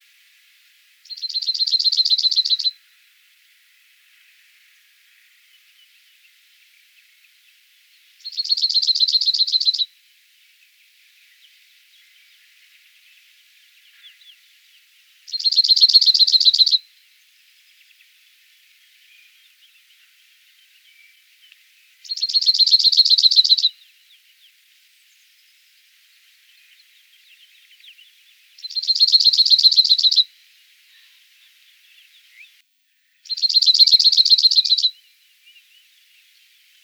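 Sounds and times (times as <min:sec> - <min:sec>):
cirl bunting Emberiza cirlus singing: 0:01.1 - 0:02.7, 0:08.2 - 0:09.9, 0:11.2 - 0:32.6, 0:33.2 - 0:36.8.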